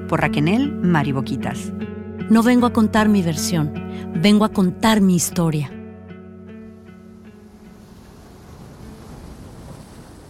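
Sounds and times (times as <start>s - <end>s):
speech: 0.1s - 5.8s
ocean waves crashing on a beach: 6.6s - 10.2s.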